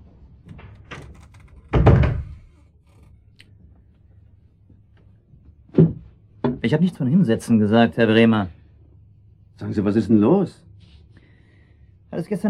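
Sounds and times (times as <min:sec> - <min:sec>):
door being closed with a heavy solid thud: 0:00.5 - 0:02.6
speech: 0:06.7 - 0:08.6, 0:09.6 - 0:10.7, 0:12.2 - 0:12.4.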